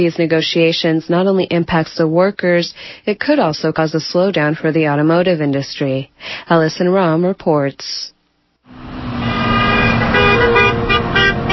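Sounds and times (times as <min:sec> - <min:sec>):
speech: 0:00.0 - 0:08.1
cars and trucks rushing past on a busy road: 0:08.7 - 0:11.5
horns honking in short bursts: 0:09.0 - 0:11.5.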